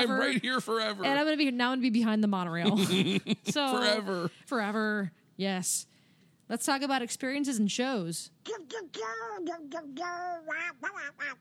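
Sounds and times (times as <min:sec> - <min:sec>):
speech: 0:00.0 - 0:05.9, 0:06.5 - 0:11.3
human voice imitating a raspy quacking cartoon duck singing a bouncy melody: 0:08.5 - 0:11.3.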